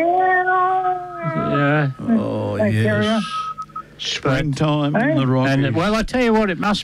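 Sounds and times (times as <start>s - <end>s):
cats yowling: 0.0s - 3.5s
speech: 1.5s - 3.4s, 4.0s - 6.8s.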